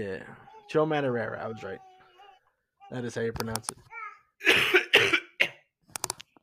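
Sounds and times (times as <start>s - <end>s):
speech: 0.0s - 1.9s, 2.9s - 5.2s
person coughing away from a microphone: 4.4s - 5.7s.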